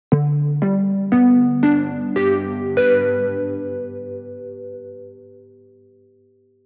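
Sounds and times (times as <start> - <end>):
distorted Jupiter-8 synth keys: 0.1 - 5.1.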